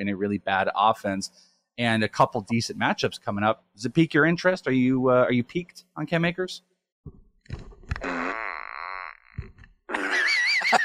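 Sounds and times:
speech: 0.0 - 8.1
loud drawn-out comedic fart sound effect: 7.8 - 10.3.

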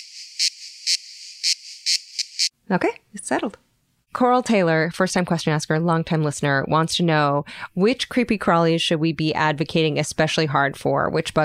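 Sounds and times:
cicadas screaming: 0.0 - 2.5
speech: 2.7 - 11.4.

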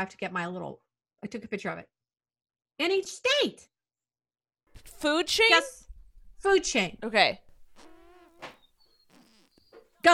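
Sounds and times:
speech: 0.0 - 2.0, 2.8 - 3.7, 4.8 - 5.8, 6.4 - 8.6
breathy buzzing mouth sounds: 7.5 - 9.6.

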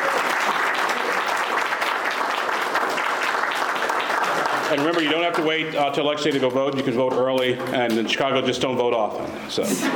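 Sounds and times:
audience round of applause: 0.0 - 7.8
speech: 4.7 - 9.9.

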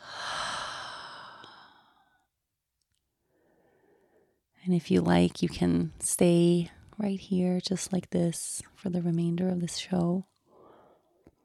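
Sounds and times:
deep breath in through the nose and out through the mouth: 0.0 - 2.2, 3.2 - 4.4, 10.5 - 11.2
speech: 4.7 - 10.3.

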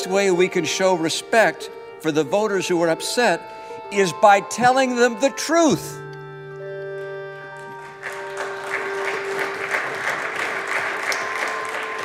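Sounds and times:
speech: 0.0 - 6.0
bipartisan applause on the Senate floor: 7.5 - 12.0.

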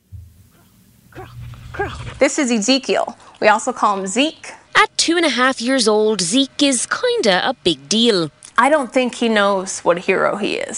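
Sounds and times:
steady low hum: 0.0 - 10.7
service dog barking: 0.5 - 2.3
speech: 1.2 - 10.7.

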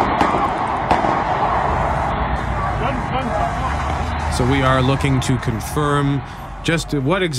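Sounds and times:
gunfire outside Parliament in Westminster recorded on cell phone: 0.0 - 1.7
sirens: 0.0 - 7.3
speech: 4.4 - 7.3.

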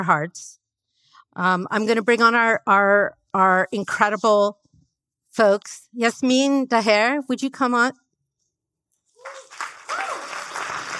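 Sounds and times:
speech: 0.0 - 0.6, 1.4 - 4.6, 5.3 - 8.0
cheers and whoops from the crowd: 9.2 - 10.9
crowd applauding: 9.2 - 10.9.

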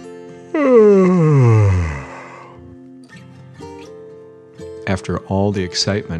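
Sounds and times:
speech: 0.5 - 1.1, 4.9 - 6.1
narrator imitating a sleepy yawn: 0.5 - 2.6.

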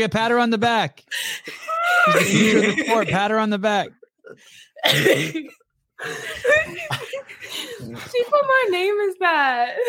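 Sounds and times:
speech: 0.0 - 9.8
laughter: 1.4 - 3.3, 5.2 - 8.7
harsh raspy hacking coughing fit: 4.8 - 5.6.

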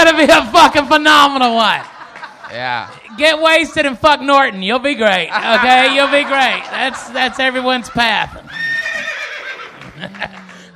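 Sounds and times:
speech: 0.1 - 1.9, 2.5 - 8.6, 10.0 - 10.4
laughter: 0.1 - 10.7
horse whinnying and snorting: 8.5 - 10.0.

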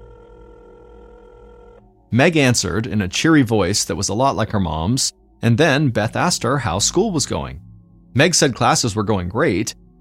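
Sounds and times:
wall-mounted kitchen telephone buzzing ring tone on an outgoing call: 0.0 - 1.9
speech: 2.1 - 9.8.

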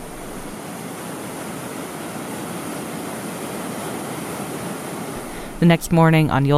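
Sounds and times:
roar of rushing water from a waterfall: 0.0 - 5.8
speech: 5.6 - 6.5.

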